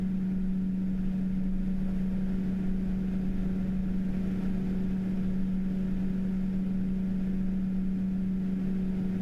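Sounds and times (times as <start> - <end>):
Raijintek Eos 12 fan running at 1800 RPM: 0.0 - 9.2.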